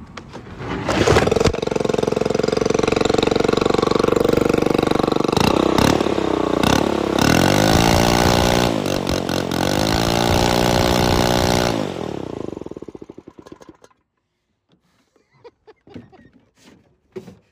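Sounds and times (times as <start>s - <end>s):
leaf blower engine revving with a raspy whine: 0.9s - 13.9s.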